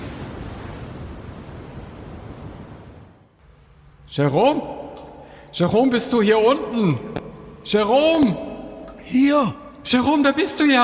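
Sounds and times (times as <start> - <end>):
strong wind roaring across open water: 0.0 - 3.3
speech: 4.1 - 4.8, 5.5 - 8.5, 9.1 - 10.8.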